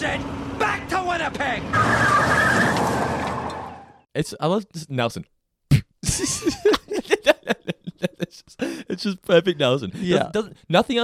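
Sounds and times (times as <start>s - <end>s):
speech: 0.0s - 2.3s, 4.2s - 5.3s, 6.2s - 7.0s, 8.3s - 11.0s
car tires squealing in a skid as the car turns around: 0.0s - 4.1s
rough road noise: 0.0s - 4.1s
laughter: 6.0s - 9.1s.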